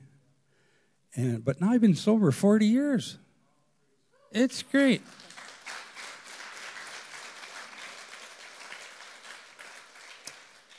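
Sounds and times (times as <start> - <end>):
speech: 1.2 - 3.2, 4.3 - 5.4
crowd applauding in a full room: 4.8 - 10.7.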